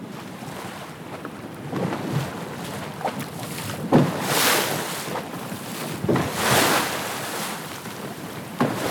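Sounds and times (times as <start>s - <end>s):
wind buffeting the microphone on open sea: 0.0s - 8.8s
water rushing past a small tour boat: 3.1s - 8.8s.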